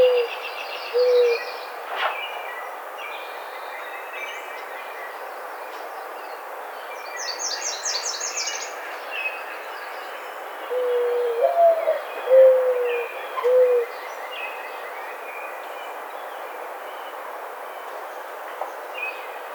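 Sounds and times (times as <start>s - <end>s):
mourning dove cooing: 0.0s - 0.3s, 1.0s - 1.4s, 10.7s - 13.9s.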